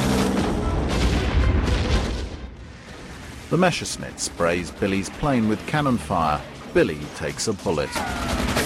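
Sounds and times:
bombs dropped by wartime bombers exploding on the ground: 0.1s - 4.9s
speech: 3.5s - 8.6s.

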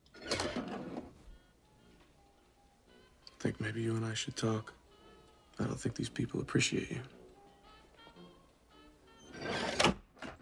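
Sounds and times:
speech: 3.4s - 4.8s, 5.6s - 7.2s
small metal door peephole panel scraping open: 9.3s - 10.3s.

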